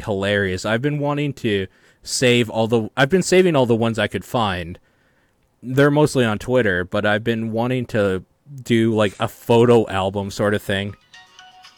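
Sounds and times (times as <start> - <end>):
speech: 0.0 - 4.9, 5.6 - 11.0
mobile phone ringtone chiming: 10.9 - 11.7.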